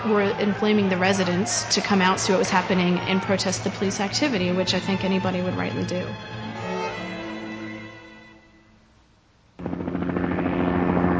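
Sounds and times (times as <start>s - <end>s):
speech: 0.0s - 6.9s
helicopter rotor drone: 9.6s - 11.1s.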